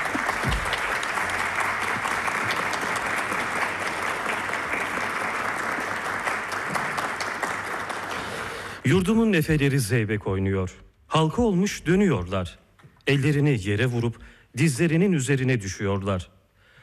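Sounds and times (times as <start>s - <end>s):
audience applause at a Turkish folk music concert: 0.0s - 8.9s
speech: 8.9s - 16.3s.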